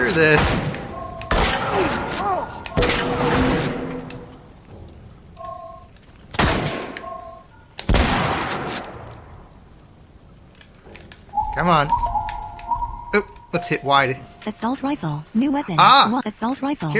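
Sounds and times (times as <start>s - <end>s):
speech: 0.1s - 0.7s, 11.7s - 12.0s, 13.5s - 16.9s
faint video game sound effects: 0.2s - 4.6s, 11.3s - 14.8s
pump shotgun fire in a video game: 0.3s - 4.0s, 6.3s - 7.1s, 7.8s - 9.1s.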